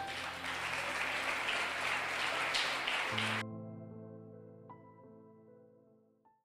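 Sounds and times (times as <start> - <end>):
audience applauding: 0.0 - 3.4.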